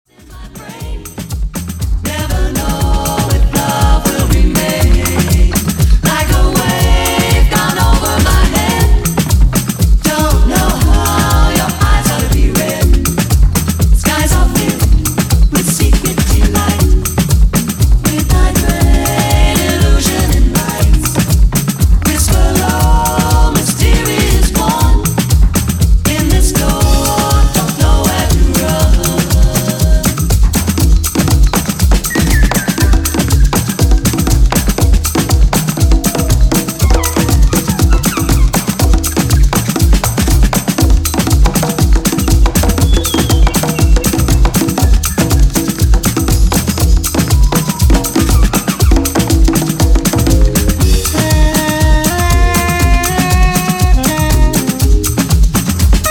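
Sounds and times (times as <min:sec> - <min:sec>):
Afro Beat music edit: 0:00.0 - 0:56.0.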